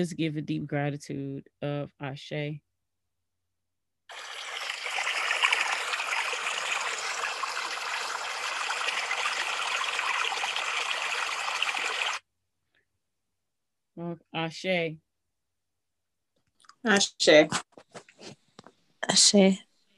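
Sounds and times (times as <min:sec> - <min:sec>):
speech: 0:00.0 - 0:02.7, 0:14.0 - 0:15.1, 0:16.8 - 0:18.4, 0:19.0 - 0:19.7
liquid poured out as a libation: 0:04.1 - 0:12.2.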